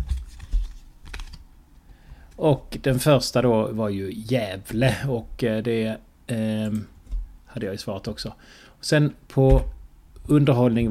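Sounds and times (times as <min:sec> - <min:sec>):
Trivial Pursuit card being flipped over: 0:00.0 - 0:01.4
speech: 0:02.4 - 0:07.0, 0:07.6 - 0:10.8.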